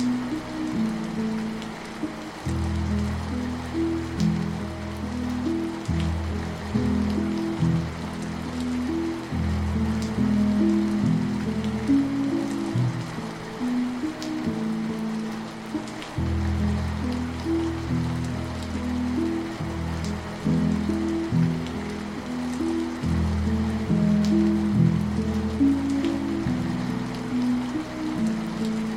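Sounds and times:
soft low piano chords: 0.0s - 28.9s
steady patter of rain: 0.0s - 28.9s.

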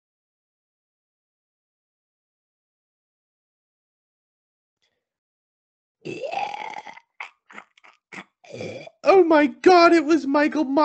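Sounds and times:
drawn-out guttural burp-like groan: 6.0s - 9.0s
speech: 8.5s - 10.8s.

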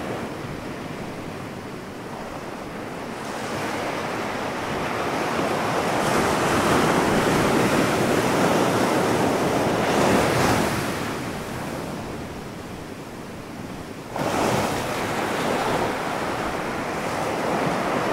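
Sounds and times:
faint airy wind: 0.0s - 18.1s
gentle waves washing ashore: 0.0s - 18.1s.

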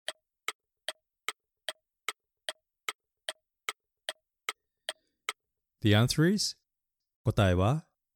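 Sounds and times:
clock ticking: 0.0s - 5.4s
speech: 5.8s - 6.6s, 7.2s - 7.9s.

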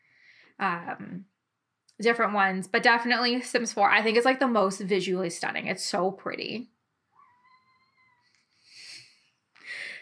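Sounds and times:
speech: 0.6s - 1.4s, 2.0s - 6.7s
cat meowing: 7.1s - 8.5s.

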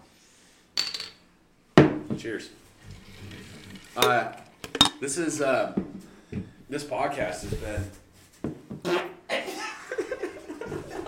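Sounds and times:
speech: 2.2s - 3.4s, 4.0s - 8.0s
fart blown straight into a microphone: 8.8s - 9.2s
laughter: 9.3s - 11.0s.

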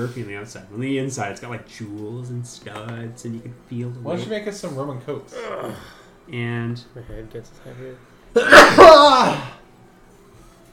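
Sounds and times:
speech: 0.0s - 9.6s
sneeze: 8.4s - 9.6s.

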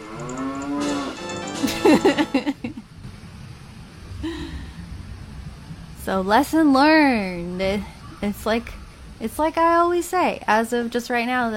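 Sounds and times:
cow mooing: 0.0s - 1.2s
laughter: 1.6s - 2.8s
speech: 1.8s - 2.4s, 6.1s - 11.5s.

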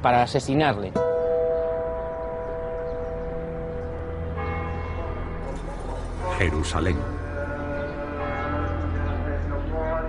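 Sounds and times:
speech: 0.0s - 1.1s, 6.4s - 7.1s
church bells ringing in Jerusalem: 1.0s - 10.0s.

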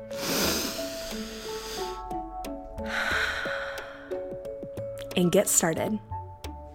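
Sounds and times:
deep breath in and out: 0.0s - 2.1s, 2.8s - 4.5s
speech: 5.2s - 6.1s.

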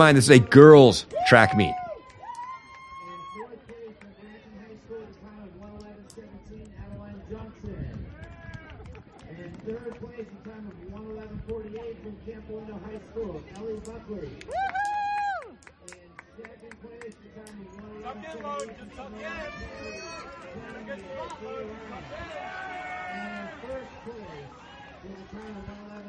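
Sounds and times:
announcer's voice over a loudspeaker: 0.0s - 1.7s
speech: 0.0s - 1.8s
crowd cheering and applauding at an outdoor track meet: 0.0s - 3.4s, 14.5s - 15.6s.

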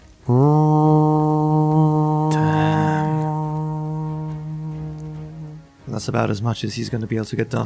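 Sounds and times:
deep war horn blown by a wounded orc: 0.2s - 6.3s
speech: 0.3s - 0.8s, 6.1s - 7.6s.

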